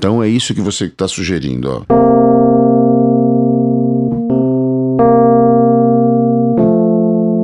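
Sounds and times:
speech: 0.0s - 2.9s
sustained electronic synth tones in a dissonant two-note interval: 1.9s - 7.4s.

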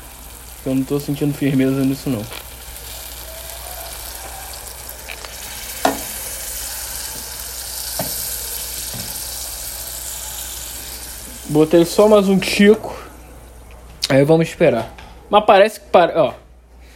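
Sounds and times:
steady sizzling hiss from a hot pan of cooking rice: 0.0s - 13.0s
speech: 0.6s - 2.4s, 11.5s - 13.0s, 14.1s - 16.4s.

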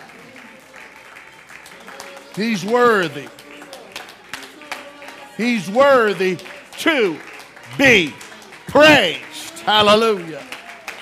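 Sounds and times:
church service audience clapping hands in praise: 0.0s - 11.0s
speech: 2.4s - 3.4s, 5.4s - 10.5s
indistinct voices: 5.1s - 10.5s.

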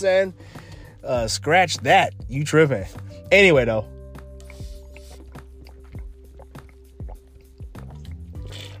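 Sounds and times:
speech: 0.0s - 4.0s
water pouring: 4.4s - 8.7s.

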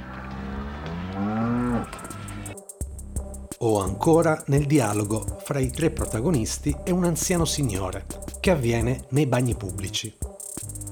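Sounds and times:
cow mooing: 0.2s - 2.5s
speech: 3.6s - 10.2s.

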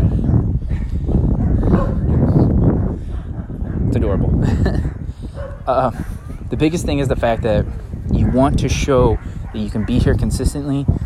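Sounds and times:
dog barking: 0.7s - 4.2s, 4.8s - 6.4s, 7.4s - 10.2s
laughter: 4.4s - 4.9s
speech: 5.7s - 11.0s.

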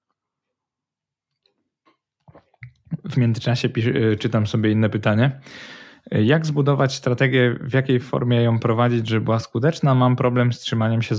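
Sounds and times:
gulping and swallowing: 1.9s - 3.1s
sipping water: 1.9s - 3.1s
speech: 3.2s - 11.1s.

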